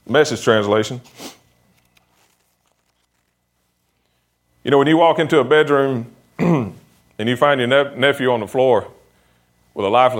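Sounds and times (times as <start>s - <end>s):
speech: 0.1s - 1.4s, 4.7s - 9.0s, 9.8s - 10.1s
paper crinkling and rustling as a speaker searches for his notes: 1.7s - 4.1s.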